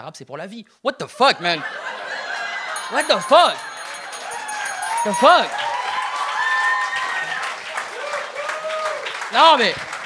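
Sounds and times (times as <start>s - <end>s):
speech: 0.0s - 2.0s, 2.9s - 3.7s, 5.0s - 5.6s, 9.3s - 9.9s
laughter: 1.2s - 3.9s
large audience applauding: 2.1s - 10.0s.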